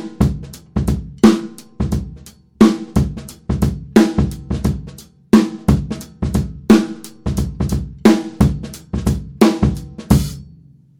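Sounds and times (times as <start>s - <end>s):
kick drum through port: 0.2s - 2.2s, 3.0s - 5.0s, 5.7s - 6.7s, 7.3s - 10.4s.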